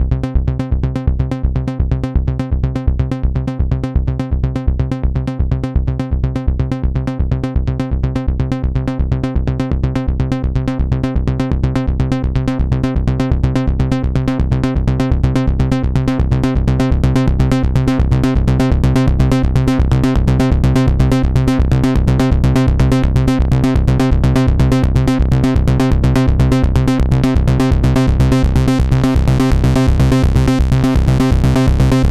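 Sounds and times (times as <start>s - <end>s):
synthesizer with tube: 0.0s - 32.0s.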